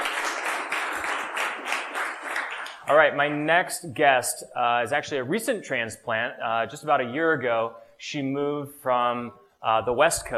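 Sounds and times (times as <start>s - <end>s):
audience applause at a technology community event: 0.0s - 3.1s
speech: 2.9s - 10.3s.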